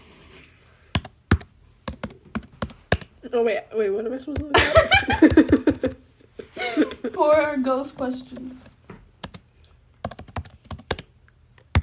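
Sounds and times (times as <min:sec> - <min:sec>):
typing on a computer keyboard: 0:00.9 - 0:03.1, 0:05.2 - 0:06.0, 0:09.2 - 0:11.8
speech: 0:03.3 - 0:06.0, 0:06.7 - 0:08.7
laughter: 0:04.5 - 0:07.3.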